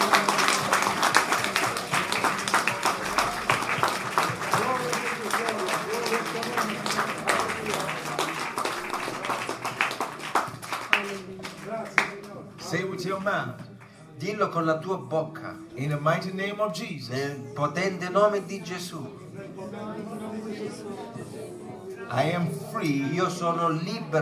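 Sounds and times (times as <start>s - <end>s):
church congregation clapping: 0.0s - 14.0s
murmur of voices: 0.0s - 24.2s
speech: 14.4s - 19.2s, 22.1s - 24.2s.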